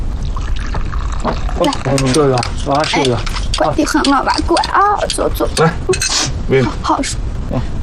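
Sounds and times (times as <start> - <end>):
water pouring: 0.2 - 2.7
speech: 1.2 - 7.7.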